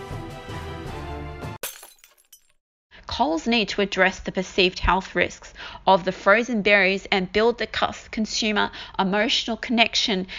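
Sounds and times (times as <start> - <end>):
musical passage: 0.0 - 1.6
glass shattering in a loud crash: 1.6 - 2.6
scattered glass shards tinkling as they settle: 1.6 - 2.6
speech: 3.2 - 10.3.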